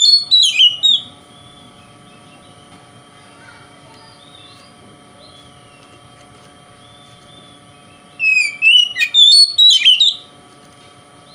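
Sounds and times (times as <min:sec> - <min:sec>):
Oriental magpie-robin singing in konslet song style: 0:00.0 - 0:02.6, 0:04.0 - 0:05.9, 0:06.8 - 0:10.3.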